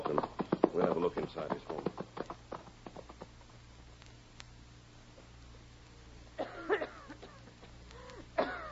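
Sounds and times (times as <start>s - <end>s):
low steady hum: 0.0s - 8.7s
speech: 1.0s - 2.0s
person coughing in harsh fits: 6.4s - 7.8s, 8.4s - 8.7s.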